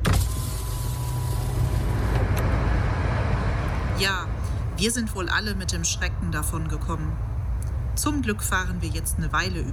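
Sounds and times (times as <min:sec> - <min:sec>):
car power window whir: 0:00.0 - 0:03.0
car engine and road rumble at steady speed: 0:00.0 - 0:09.7
speech: 0:04.0 - 0:07.3, 0:08.0 - 0:09.7.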